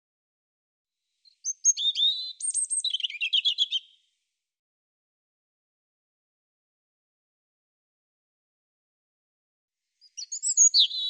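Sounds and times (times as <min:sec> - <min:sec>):
European robin singing: 0:01.2 - 0:04.1, 0:10.0 - 0:11.0.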